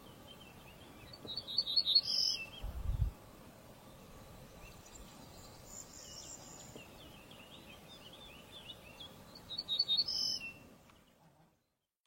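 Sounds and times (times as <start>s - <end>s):
softer twittering of other birds: 1.0s - 2.7s, 5.8s - 10.6s.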